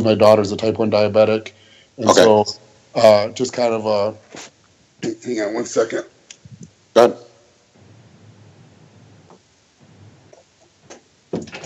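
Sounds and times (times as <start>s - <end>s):
speech: 0.0s - 6.1s, 7.0s - 7.2s
low rumbling noise: 7.8s - 10.4s
upstairs door shutting with a solid thud: 10.9s - 11.6s.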